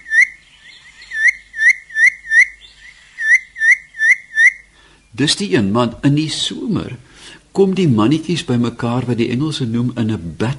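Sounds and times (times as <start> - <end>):
Cape batis whistling its four-note call: 0.0 - 4.7
speech: 5.2 - 10.5.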